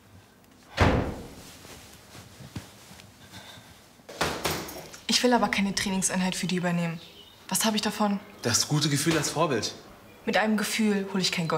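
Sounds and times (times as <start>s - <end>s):
door pushed shut with a thud: 0.7s - 1.4s
speech: 5.1s - 11.5s.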